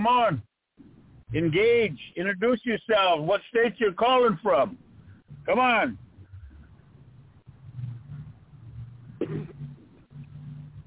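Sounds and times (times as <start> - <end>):
speech: 0.0 - 0.5, 1.3 - 4.9, 5.5 - 6.0
steady low hum: 0.0 - 10.8
single short cough over a muffled phone-quality line: 9.2 - 9.6.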